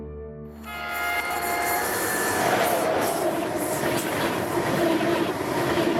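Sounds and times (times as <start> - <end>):
thin metallic wheel squeal of high-speed train: 0.6 - 3.1
ICE high-speed train running: 0.6 - 5.9.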